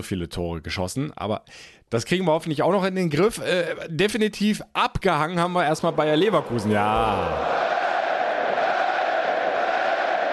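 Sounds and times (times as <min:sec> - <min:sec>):
speech: 0:00.0 - 0:07.6
large stadium crowd roaring and cheering while doing the wave: 0:05.4 - 0:10.3.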